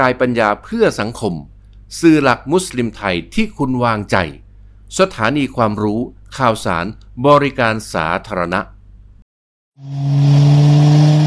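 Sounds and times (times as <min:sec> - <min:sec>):
speech: 0:00.0 - 0:08.7, 0:09.8 - 0:10.6
car engine roaring while driven fast: 0:09.8 - 0:11.2.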